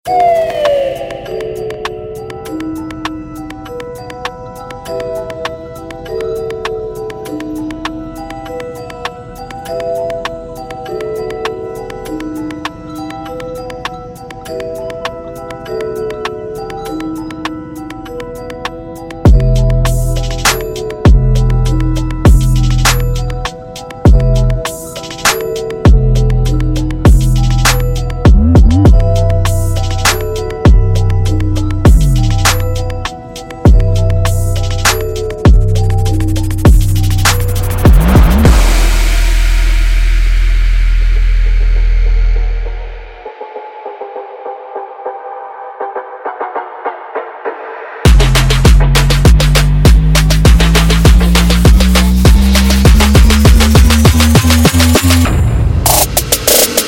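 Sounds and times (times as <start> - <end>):
trap beat with 808 bass drum: 0.0 - 44.4, 45.0 - 56.8.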